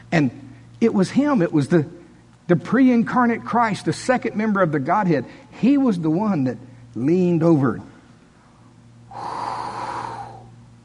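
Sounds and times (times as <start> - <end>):
faint steady hum: 0.0 - 10.8
speech: 0.1 - 7.9
forceful exhaled breath demonstrating breathing life into someone: 9.1 - 10.5.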